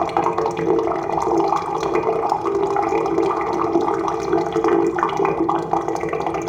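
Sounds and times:
pipe gurgling aboard a galleon: 0.0s - 6.4s.

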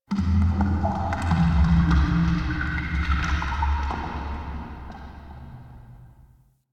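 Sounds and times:
water drips: 0.4s - 5.9s.

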